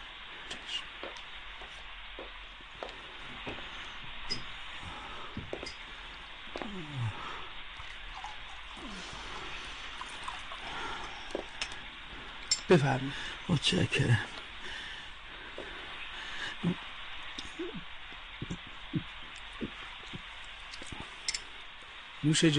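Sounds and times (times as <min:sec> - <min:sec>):
steady hiss: 0:00.0 - 0:22.5
water pouring into a glass: 0:07.8 - 0:11.8
small glass clinks: 0:12.5 - 0:12.7
speech: 0:12.7 - 0:14.4, 0:22.2 - 0:22.5.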